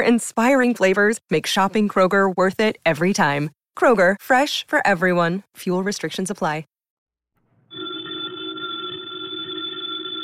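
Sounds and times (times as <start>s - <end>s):
speech: 0.0s - 6.7s
telephone bell ringing: 7.7s - 10.2s.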